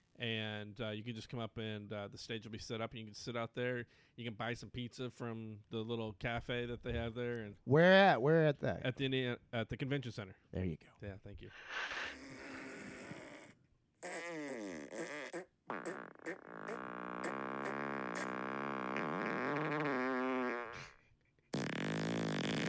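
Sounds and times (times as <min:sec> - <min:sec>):
speech: 0:00.2 - 0:12.4
fart sounds from a soundboard app: 0:12.2 - 0:22.6.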